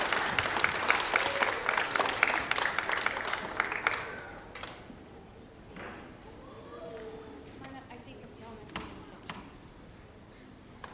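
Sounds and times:
audience applause: 0:00.0 - 0:04.8.

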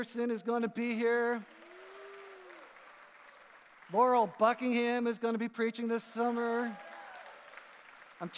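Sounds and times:
speech: 0:00.0 - 0:01.6, 0:03.9 - 0:06.9, 0:08.2 - 0:08.3
audience applauding: 0:01.2 - 0:04.5, 0:06.3 - 0:08.3.

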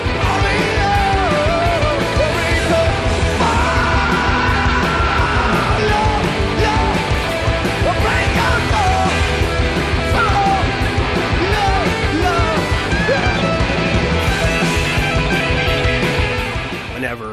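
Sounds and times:
rock band playing live with guitars and drums: 0:00.0 - 0:17.3
singer screaming in a live rock song: 0:00.2 - 0:07.2, 0:10.1 - 0:13.6.

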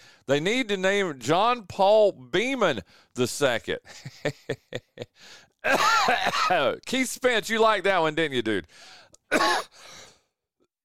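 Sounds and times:
speech: 0:00.3 - 0:10.1
person coughing: 0:05.6 - 0:06.7, 0:09.3 - 0:09.9.

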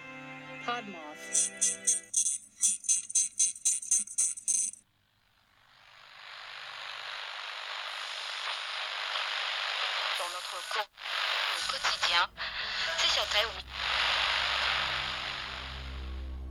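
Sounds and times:
speech: 0:00.7 - 0:02.8
loud hissing radio static: 0:05.4 - 0:16.4
radio tuning noise: 0:05.7 - 0:16.3.

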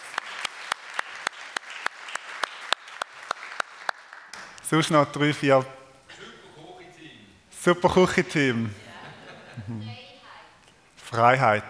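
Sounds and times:
crowd applauding: 0:00.0 - 0:04.6
speech: 0:04.7 - 0:05.8, 0:07.6 - 0:08.8, 0:09.6 - 0:10.0, 0:11.1 - 0:11.6
laughter: 0:08.4 - 0:10.1.

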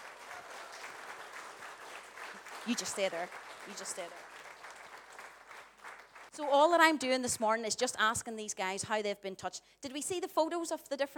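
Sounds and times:
audience applause: 0:00.0 - 0:06.3
speech: 0:02.6 - 0:04.3, 0:06.4 - 0:11.1.

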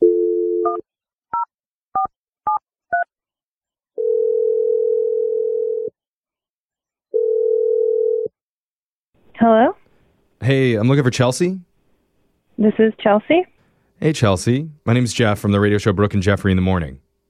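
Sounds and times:
long steady loud telephone tones: 0:00.0 - 0:00.8, 0:04.0 - 0:05.9, 0:07.1 - 0:08.4
speech: 0:09.4 - 0:09.8, 0:10.5 - 0:11.7, 0:12.6 - 0:17.0.

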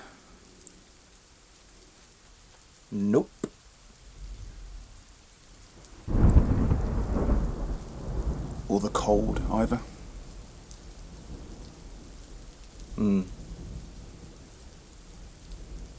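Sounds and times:
heavy rain falling: 0:00.0 - 0:15.9
speech: 0:02.9 - 0:03.4, 0:08.8 - 0:10.0, 0:13.0 - 0:13.4
thunder rumbling: 0:06.0 - 0:15.9.

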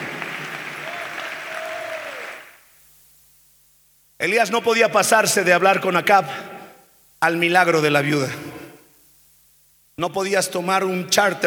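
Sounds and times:
audience applause: 0:00.0 - 0:02.6
speech: 0:04.2 - 0:06.5, 0:07.2 - 0:08.5, 0:10.0 - 0:11.4.

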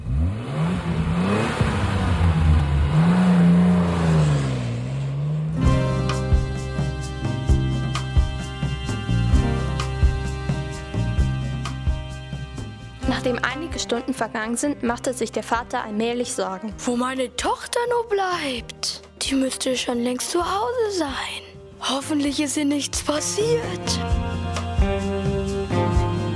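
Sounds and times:
car engine revving hard as the car drives away fast: 0:00.0 - 0:13.1
music: 0:05.6 - 0:26.3
speech: 0:13.3 - 0:24.3.

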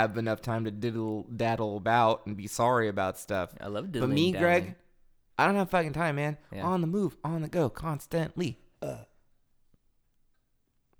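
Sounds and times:
speech: 0:00.0 - 0:04.8, 0:05.4 - 0:09.1
burp: 0:08.8 - 0:09.2.

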